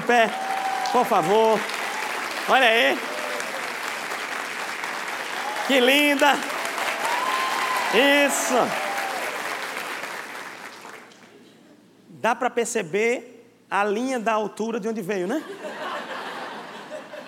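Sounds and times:
audience applauding: 0.0s - 11.3s
speech: 0.1s - 1.8s, 2.4s - 3.1s, 5.7s - 6.5s, 7.9s - 8.8s, 12.2s - 15.7s
laughter: 15.4s - 17.2s.

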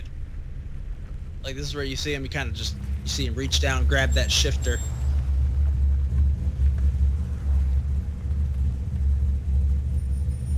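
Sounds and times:
deep steady car engine rumble: 0.0s - 10.5s
speech: 1.4s - 5.0s.

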